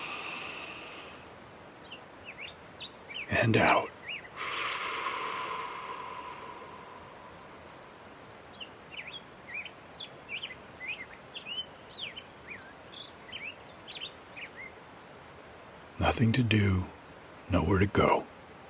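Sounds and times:
grosbeak singing by a creek: 0:01.8 - 0:14.8
speech: 0:03.3 - 0:04.0, 0:16.2 - 0:18.3.

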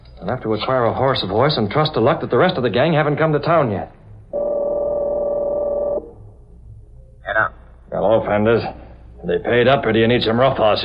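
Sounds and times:
speech: 0:00.2 - 0:04.0, 0:08.1 - 0:10.8
telephone tone while dialing a hotel room: 0:04.3 - 0:06.2.

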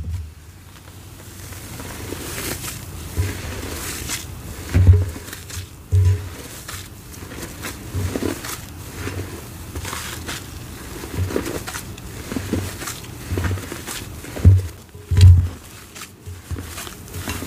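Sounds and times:
dull thumps: 0:00.0 - 0:00.4, 0:04.7 - 0:06.6, 0:14.3 - 0:17.4
paste being mixed by hand, rustling and squishing: 0:00.8 - 0:17.4
low steady hum: 0:05.9 - 0:06.4.

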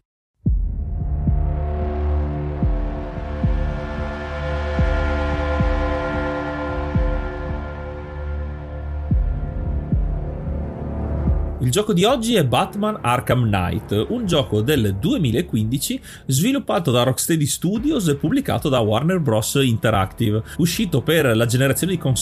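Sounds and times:
slow pulsing low thump: 0:00.4 - 0:11.6
dark droning video game soundtrack music: 0:00.5 - 0:22.2
speech: 0:11.7 - 0:22.2.

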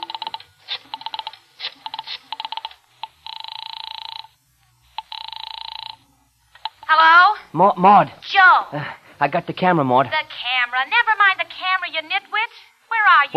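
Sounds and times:
rotary telephone dial clicks: 0:00.0 - 0:04.3, 0:05.0 - 0:06.0
steady electronic telephone ringing tone: 0:00.0 - 0:07.0
speech: 0:07.6 - 0:13.3.

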